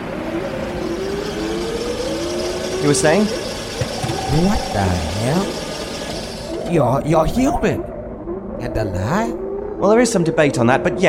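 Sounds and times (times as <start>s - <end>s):
car engine revving as the car approaches: 0.0s - 7.5s
speech: 2.8s - 3.4s, 4.3s - 5.6s, 6.7s - 7.9s, 8.6s - 11.0s.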